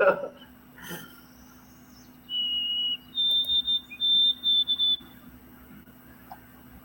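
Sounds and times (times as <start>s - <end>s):
faint hum: 0.0s - 6.8s
white-throated sparrow singing high clear whistled notes: 1.2s - 5.3s.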